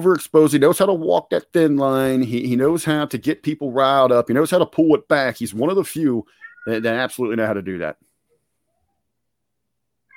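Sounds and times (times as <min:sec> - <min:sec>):
speech: 0:00.0 - 0:08.1
cat meowing: 0:06.3 - 0:07.0.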